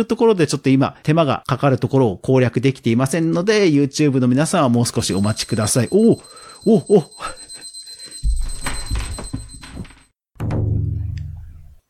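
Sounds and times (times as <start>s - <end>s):
speech: 0.0s - 7.4s
study timer alarm with high-pitched electronic tone: 5.0s - 10.1s
thumps and knocking: 8.2s - 10.6s.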